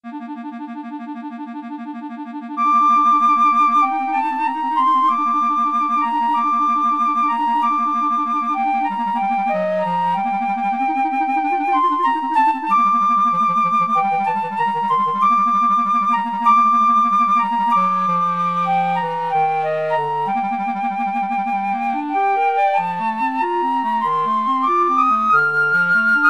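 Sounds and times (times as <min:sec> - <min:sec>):
clarinet: 0:00.0 - 0:26.2
flute: 0:02.4 - 0:26.2.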